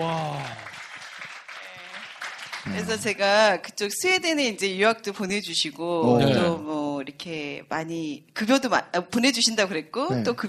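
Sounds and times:
speech: 0.0s - 0.6s, 2.6s - 10.4s
audience applause from a small crowd: 0.0s - 3.2s.

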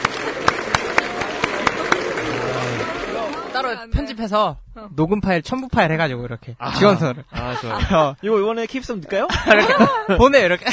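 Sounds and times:
hand clapping: 0.0s - 3.4s
speech: 3.6s - 10.7s
laughter: 6.7s - 8.2s, 8.9s - 10.7s.

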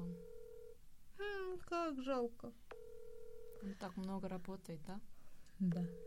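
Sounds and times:
ringback tone of an unanswered outgoing phone call: 0.0s - 0.8s, 2.7s - 3.7s, 5.7s - 6.0s
speech: 1.2s - 2.6s, 3.6s - 6.0s.

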